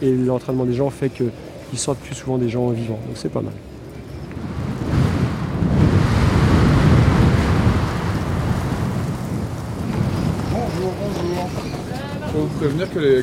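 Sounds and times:
speech: 0.0 - 3.8, 12.6 - 13.2
strong mountain wind roaring: 3.6 - 13.2.

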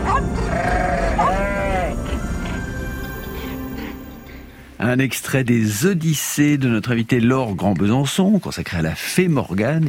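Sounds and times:
goat bleating: 0.1 - 2.0
speech: 4.8 - 9.8.

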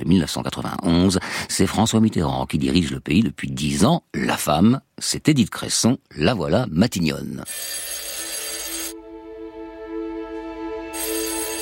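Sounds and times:
speech: 0.1 - 8.0
telephone ringing with a bright buzzing electronic tone: 7.4 - 9.0, 11.0 - 11.6.

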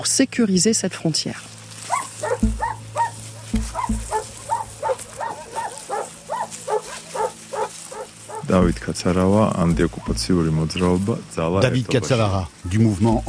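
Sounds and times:
speech: 0.0 - 1.6, 8.5 - 13.2
dog barking: 1.8 - 8.5.

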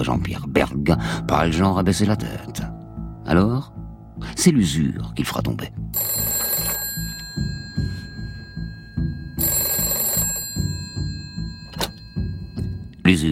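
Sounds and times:
speech: 0.0 - 2.7, 3.3 - 6.1, 13.1 - 13.3
telephone bell ringing with a harsh metallic jangle: 6.0 - 13.0.

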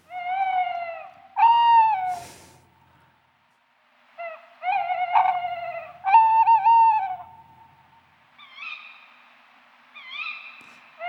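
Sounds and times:
male tawny owl hooting to court females: 0.0 - 2.6, 4.2 - 7.5, 10.0 - 11.0.

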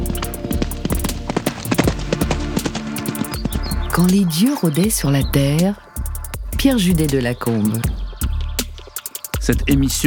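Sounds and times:
horse hooves galloping: 0.0 - 5.6
speech: 4.0 - 5.8, 6.6 - 8.0, 9.4 - 10.0.

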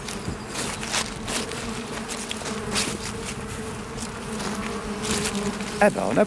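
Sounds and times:
honeybees buzzing around beehives: 0.0 - 6.2
speech: 5.8 - 6.2.

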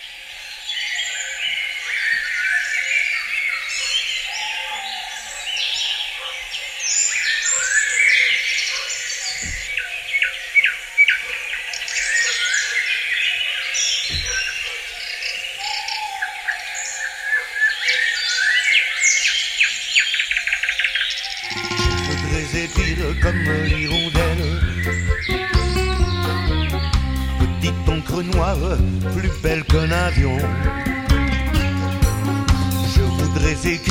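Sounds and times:
chorus of chirping birds in a reverberant forest: 0.0 - 33.8
soft low thumps: 21.5 - 33.8.

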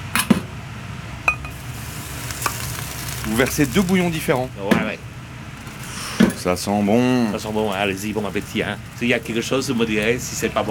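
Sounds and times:
low steady hum: 0.0 - 10.6
ceramic bowls clinking as they are taken out and set down: 1.3 - 1.6
speech: 3.3 - 5.1, 6.4 - 10.6.

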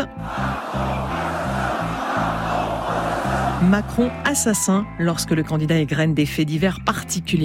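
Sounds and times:
large crowd chanting a slogan at a political rally: 0.0 - 4.0
speech: 3.6 - 7.4.

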